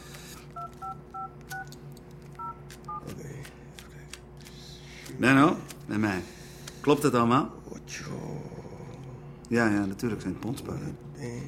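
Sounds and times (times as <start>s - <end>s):
telephone keypad dual-tone dialing beeps: 0.6s - 1.8s, 2.4s - 3.0s
speech: 5.1s - 8.3s, 9.5s - 11.4s.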